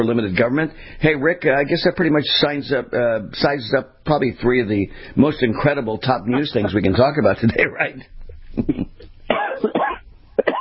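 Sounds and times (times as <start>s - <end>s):
speech: 0.0s - 8.8s
person coughing: 8.6s - 10.5s.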